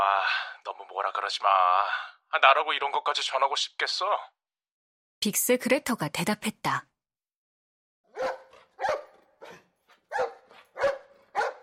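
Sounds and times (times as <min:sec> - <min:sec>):
speech: 0:00.0 - 0:04.4, 0:05.2 - 0:06.9
dog barking while running: 0:08.1 - 0:11.6.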